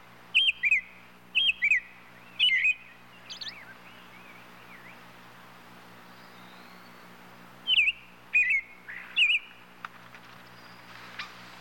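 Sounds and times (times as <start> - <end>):
robin calling with quick twittering chirps: 0.3 - 5.1, 6.1 - 9.6.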